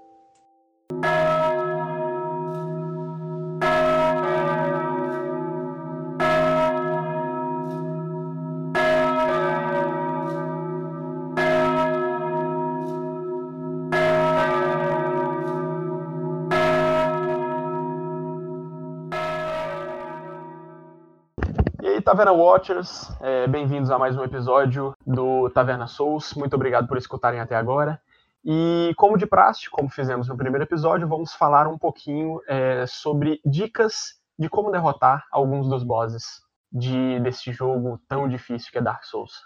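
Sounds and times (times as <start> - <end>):
church tower bell ringing: 0.9 - 21.0
speech: 22.1 - 39.4.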